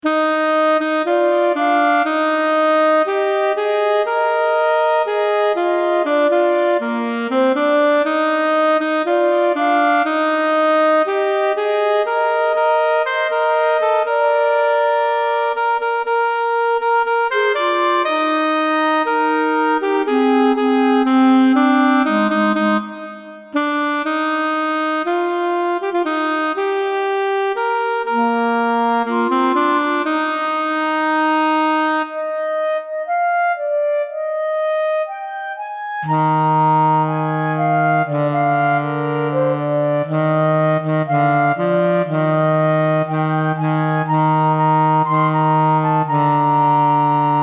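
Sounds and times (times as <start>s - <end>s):
clarinet playing in a duet: 0.0s - 47.4s
saxophone playing in a duet: 0.0s - 47.4s.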